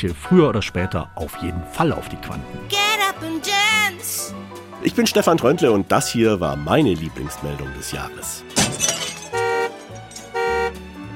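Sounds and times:
speech: 0:00.0 - 0:08.9
windshield shattering: 0:08.5 - 0:10.7
car horn honking: 0:09.1 - 0:10.8.

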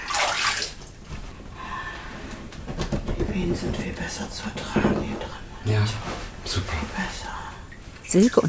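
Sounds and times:
water rushing and splashing into a birth pool being filled: 0:00.1 - 0:00.8
speech: 0:03.5 - 0:07.5, 0:08.1 - 0:08.4.

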